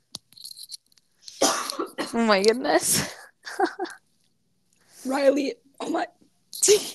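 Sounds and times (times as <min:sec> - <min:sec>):
person coughing: 0:01.4 - 0:02.2
speech: 0:02.1 - 0:04.0, 0:05.0 - 0:06.9.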